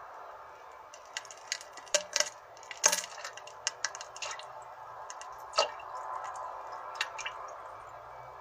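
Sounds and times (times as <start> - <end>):
feces plopping into water of a Soviet-era toilet from around 1981: 0.9 - 7.5.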